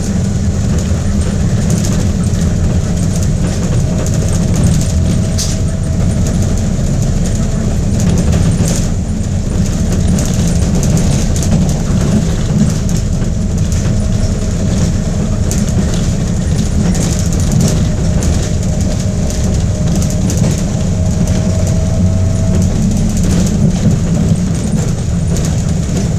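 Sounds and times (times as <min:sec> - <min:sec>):
large generator running: 0:00.0 - 0:26.1.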